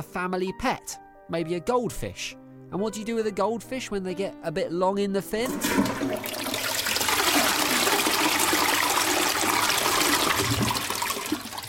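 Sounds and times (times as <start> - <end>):
speech: 0.0 - 6.7
toilet flushing: 5.4 - 11.6.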